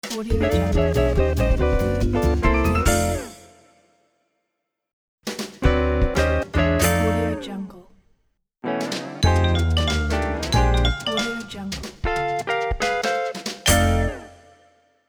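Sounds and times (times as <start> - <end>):
upbeat jazzy guitar logo: 0.2 - 3.4, 5.6 - 7.4, 8.7 - 14.4.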